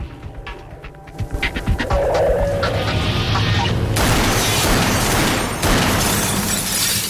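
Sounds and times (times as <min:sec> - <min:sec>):
steady broadband rushing noise: 0:01.0 - 0:04.0
several sharp gunshots: 0:03.9 - 0:06.7.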